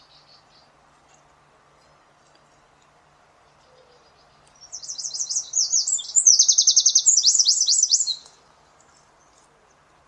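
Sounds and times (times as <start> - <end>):
bird giving fast high-pitched chirping trills: 3.4 - 9.4.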